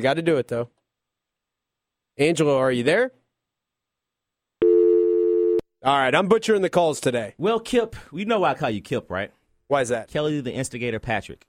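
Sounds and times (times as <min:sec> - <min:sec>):
speech: 0:00.0 - 0:00.8, 0:02.2 - 0:03.2, 0:05.8 - 0:11.4
telephone dial tone on call line: 0:04.6 - 0:05.6.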